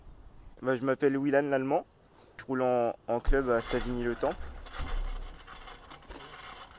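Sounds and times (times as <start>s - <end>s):
speech: 0.6s - 4.5s
bicycle disc brake pads and disc rubbing, clogged with dirt from rain and mud: 3.3s - 6.7s.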